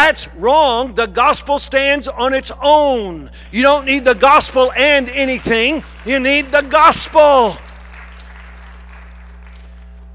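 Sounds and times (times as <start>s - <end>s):
low constant electrical hum: 0.0s - 10.1s
speech: 0.1s - 7.6s
congregation clapping during a sermon: 3.8s - 10.1s.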